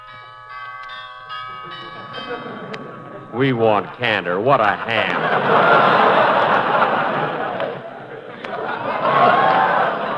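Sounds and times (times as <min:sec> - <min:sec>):
doorbell ringing: 0:00.0 - 0:05.7
laughter: 0:01.5 - 0:10.1
speech: 0:01.6 - 0:06.9.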